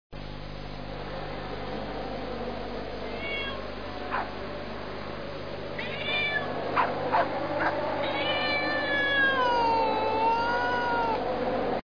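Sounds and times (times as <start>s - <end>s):
animals: 0.9s - 11.8s
cats: 3.0s - 4.4s, 5.7s - 11.7s.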